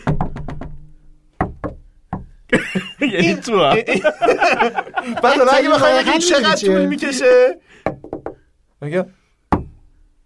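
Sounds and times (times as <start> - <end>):
knocking out Morse code: 0.0 - 3.1, 7.8 - 8.4
laughter: 2.5 - 7.6
speech: 2.6 - 7.9, 8.8 - 9.2.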